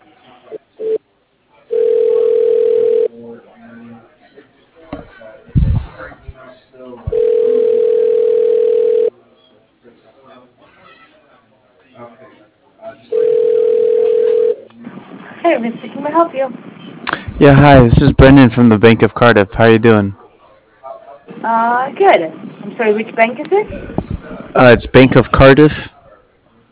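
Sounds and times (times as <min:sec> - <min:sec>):
faint voices: 0:00.0 - 0:26.7
telephone ringback tone while a call is transferred: 0:01.7 - 0:03.1, 0:07.1 - 0:09.1, 0:13.1 - 0:14.6
speech: 0:15.6 - 0:16.6, 0:17.4 - 0:20.2, 0:21.4 - 0:25.9.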